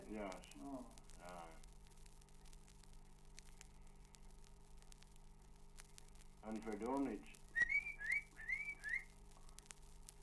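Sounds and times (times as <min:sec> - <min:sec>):
speech: 0:00.1 - 0:01.7, 0:06.4 - 0:07.4
shepherd's whistle command to sheepdog: 0:07.5 - 0:09.1.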